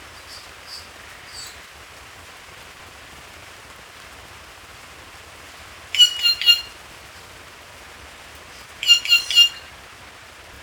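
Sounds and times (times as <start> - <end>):
black-crested warbler Myiothlypis nigrocristata giving high chip notes: 8.8 - 9.6.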